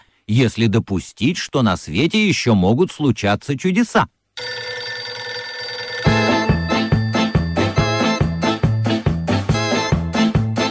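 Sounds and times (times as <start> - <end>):
speech: 0.3 - 4.5
desk telephone ringing: 4.4 - 9.9.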